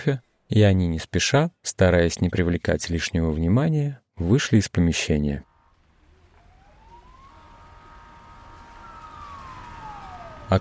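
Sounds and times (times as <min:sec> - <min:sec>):
speech: 0:00.0 - 0:05.5
emergency vehicle sirens wailing: 0:05.5 - 0:10.6
steady rumble of street traffic: 0:05.6 - 0:10.6.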